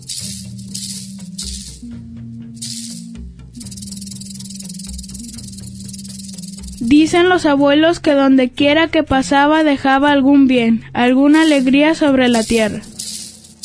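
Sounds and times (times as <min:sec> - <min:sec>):
snake tail rattling: 0:00.0 - 0:02.0, 0:02.6 - 0:07.1, 0:11.3 - 0:13.6
low humming drone: 0:00.0 - 0:07.1
speech: 0:06.8 - 0:12.9.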